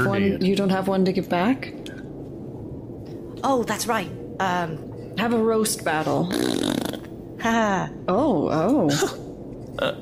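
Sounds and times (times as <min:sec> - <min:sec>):
speech: 0:00.1 - 0:02.0, 0:03.4 - 0:06.7, 0:07.4 - 0:09.2, 0:09.8 - 0:09.9
mouth raspberry imitating a fart: 0:06.3 - 0:07.1.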